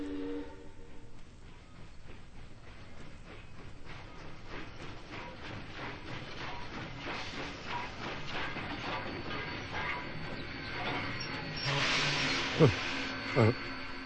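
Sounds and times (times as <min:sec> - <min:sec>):
train rumbling: 0:00.0 - 0:14.0
hiss of released air from train: 0:11.6 - 0:13.5.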